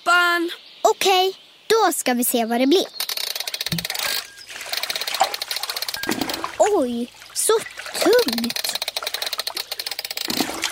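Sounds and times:
speech: 0.4s - 3.0s, 6.7s - 8.8s
water sloshing and splashing: 3.7s - 10.6s.

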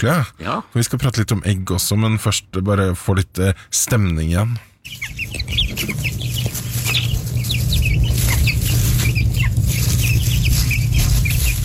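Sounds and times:
speech: 0.0s - 5.9s
chicks clucking and peeping while foraging in a hen yard: 4.8s - 11.6s
low farmyard rumble: 4.9s - 11.6s.

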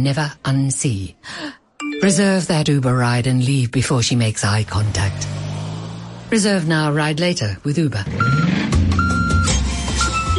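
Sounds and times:
speech: 0.0s - 5.4s, 6.3s - 8.6s
delivery truck electronic reversing beeps: 8.0s - 10.3s.

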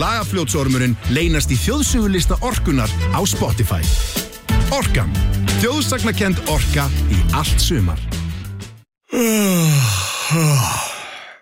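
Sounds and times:
speech: 0.0s - 8.2s, 10.3s - 10.8s
person yawning: 9.1s - 11.4s.

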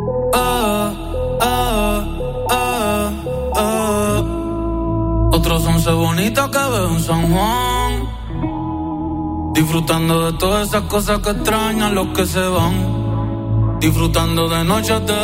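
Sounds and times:
Latin pop song: 0.1s - 15.2s
speech: 5.8s - 7.7s, 9.6s - 13.0s, 13.8s - 15.2s.

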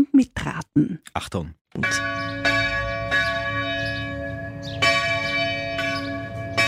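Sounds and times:
speech: 0.1s - 2.4s
church bells ringing: 1.8s - 6.6s.

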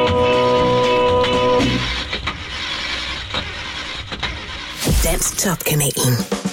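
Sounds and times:
car engine cranking: 0.2s - 4.8s
speech: 5.4s - 6.4s.

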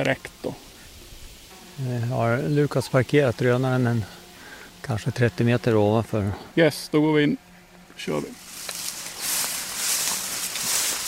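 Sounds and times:
speech: 0.0s - 0.4s, 1.8s - 4.2s, 4.8s - 7.4s, 8.0s - 8.4s
hurried half-running footsteps through a soggy marsh of tall rustling reeds: 8.3s - 11.0s.

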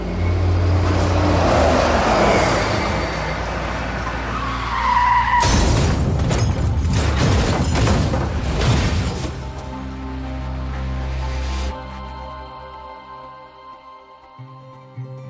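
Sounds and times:
tour bus engine rumbling on a country road in Sweden: 0.0s - 12.1s
bus crashing into a ditch: 5.4s - 9.6s
crunching, rattling debris: 5.4s - 9.9s.

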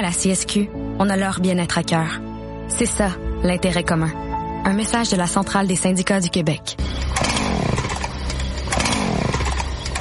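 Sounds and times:
speech: 0.0s - 7.8s
chainsaw revving outdoors: 6.8s - 9.9s.

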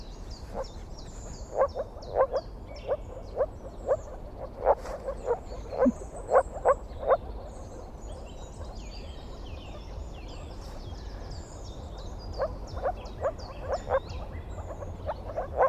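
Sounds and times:
moor frog calls: 1.4s - 8.0s, 11.8s - 15.6s.

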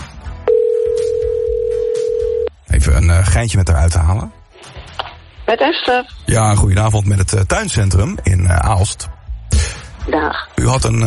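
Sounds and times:
steady single-pitched telephone tone while placing a call: 0.5s - 2.5s
speech: 2.9s - 4.4s, 5.5s - 9.2s, 10.1s - 11.0s.

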